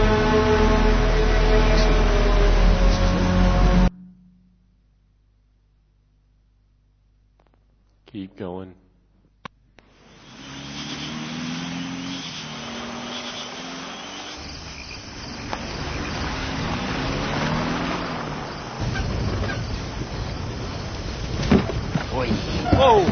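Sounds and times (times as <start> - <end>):
car engine droning as the vehicle drives off the road: 0.0 - 3.9, 9.8 - 23.1
speech: 8.2 - 8.8
insects chirping: 9.8 - 23.1
car tires rumbling and crunching over rough ground: 9.9 - 23.1.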